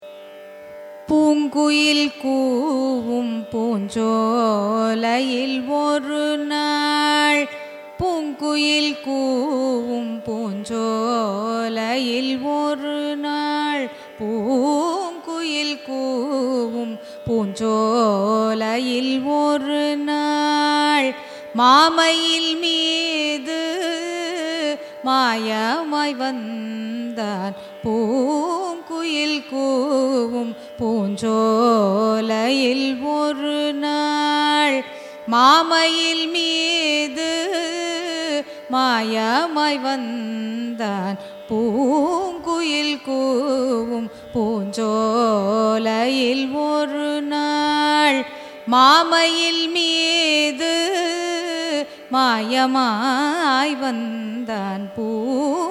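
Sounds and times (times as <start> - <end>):
carnatic raga music: 0.0 - 55.6.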